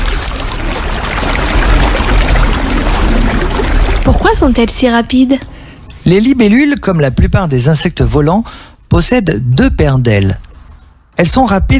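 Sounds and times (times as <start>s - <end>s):
river water flowing: 0.0s - 4.8s
speech: 4.1s - 10.4s, 11.2s - 11.7s.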